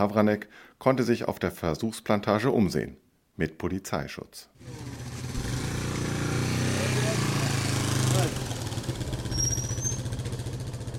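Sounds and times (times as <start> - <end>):
speech: 0.0 - 5.1, 8.2 - 8.5
old motorcycle engine rumbling in the Colombian jungle: 4.6 - 10.9.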